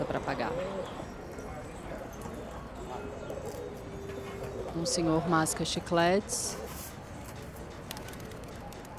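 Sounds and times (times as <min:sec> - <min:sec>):
pigeons cooing in a town square: 0:00.0 - 0:06.8
murmuring voices: 0:00.0 - 0:08.9
steady hum and bustle of a busy outdoor square: 0:00.0 - 0:08.9
speech: 0:04.8 - 0:06.6.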